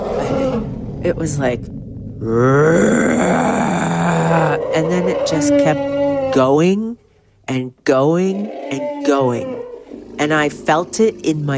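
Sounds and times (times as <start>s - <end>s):
speech: 1.1s - 9.6s, 10.2s - 11.5s
person imitating an elephant roar with a rough bellowing groan: 2.2s - 6.6s, 8.2s - 11.4s.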